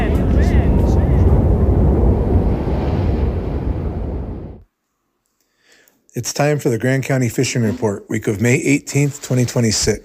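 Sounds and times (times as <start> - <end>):
wind blowing: 0.0 - 4.6
speech: 6.2 - 10.0.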